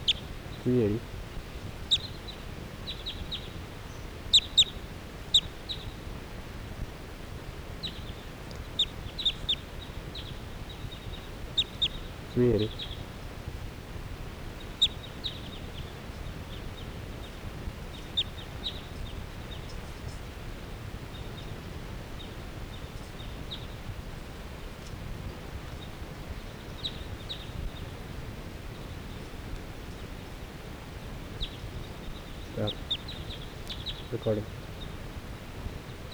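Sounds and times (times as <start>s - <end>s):
flock of birds chirping: 0.0s - 36.1s
speech: 0.6s - 1.2s, 12.4s - 12.9s, 34.2s - 34.6s
lower bird squawk: 1.9s - 2.2s, 4.3s - 5.5s, 11.0s - 13.1s, 32.4s - 34.5s.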